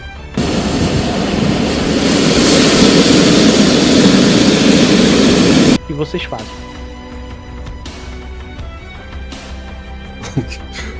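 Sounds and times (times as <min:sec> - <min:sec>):
approaching storm rumble over a choppy sea: 0:00.4 - 0:05.8
speech: 0:06.1 - 0:06.8, 0:10.4 - 0:10.7
laughter: 0:10.2 - 0:10.9.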